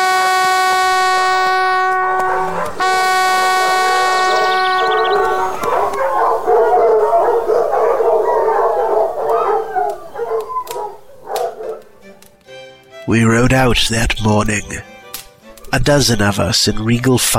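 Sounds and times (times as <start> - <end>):
hunting horn blasts: 0.0 - 8.0
pack of dogs howling and baying: 1.0 - 12.2
speech: 13.1 - 14.9, 15.7 - 17.3.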